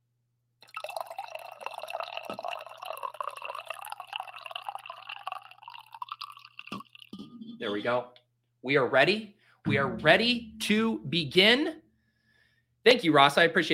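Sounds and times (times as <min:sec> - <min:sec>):
coffee pouring into a cup: 0:00.6 - 0:07.2
speech: 0:07.6 - 0:11.8, 0:12.8 - 0:13.7.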